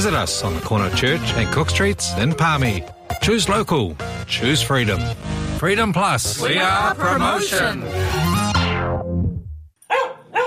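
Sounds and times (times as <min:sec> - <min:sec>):
speech: 0:00.0 - 0:08.3
dog barking: 0:09.8 - 0:10.4.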